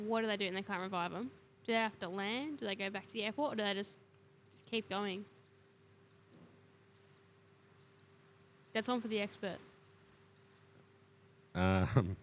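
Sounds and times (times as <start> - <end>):
speech: 0.0 - 5.4, 8.7 - 9.7, 11.6 - 12.2
crickets chirping: 4.4 - 5.5, 6.1 - 7.2, 7.8 - 8.0, 8.6 - 8.9, 9.5 - 9.7, 10.3 - 10.6.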